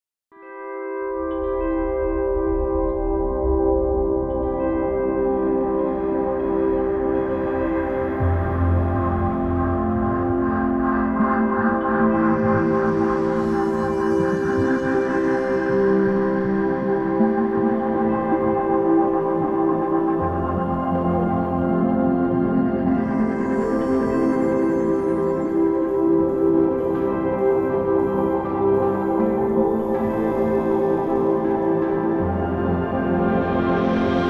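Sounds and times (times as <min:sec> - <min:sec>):
ambient documentary music: 0:00.4 - 0:34.2.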